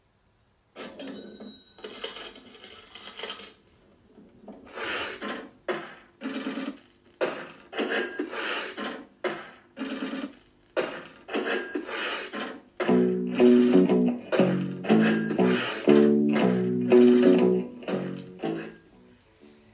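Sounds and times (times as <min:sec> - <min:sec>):
cash register drawer rattling open: 0:00.8 - 0:03.6, 0:06.3 - 0:09.0, 0:09.8 - 0:18.8
rock song: 0:12.9 - 0:18.8.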